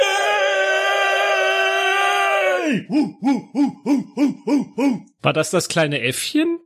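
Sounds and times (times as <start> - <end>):
person cheering and whooping away from the microphone: 0.0 - 5.1
speech: 2.7 - 6.6.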